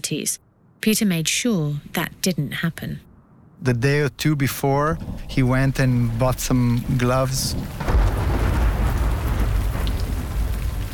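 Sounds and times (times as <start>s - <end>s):
speech: 0.1s - 7.9s
thunder rumbling: 3.0s - 10.9s
steady rain hissing: 3.8s - 10.9s.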